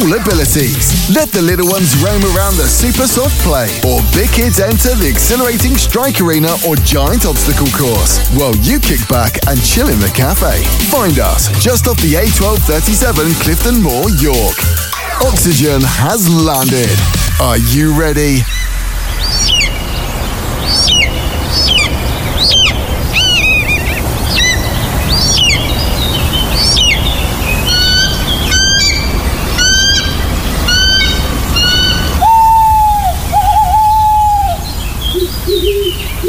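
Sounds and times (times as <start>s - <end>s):
speech: 0.1s - 18.6s
birds of prey calling at a bird of prey centre in York: 18.1s - 36.2s.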